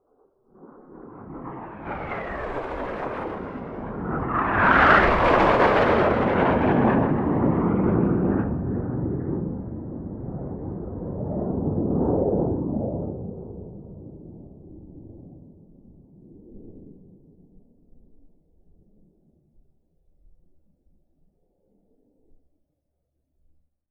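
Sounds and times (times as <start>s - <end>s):
F-5 aircraft flybys, high distant and very close: 0.6s - 15.0s.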